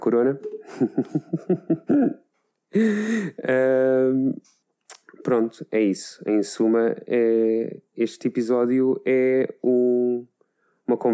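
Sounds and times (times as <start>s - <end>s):
speech: 0.0s - 4.6s, 5.2s - 10.3s, 10.9s - 11.1s
laughter: 0.6s - 2.1s
person coughing: 1.9s - 2.2s.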